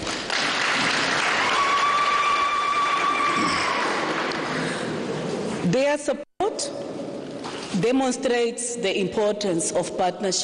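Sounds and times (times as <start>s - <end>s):
crowd applauding: 0.0s - 4.9s
speech: 5.7s - 6.9s, 7.7s - 10.4s.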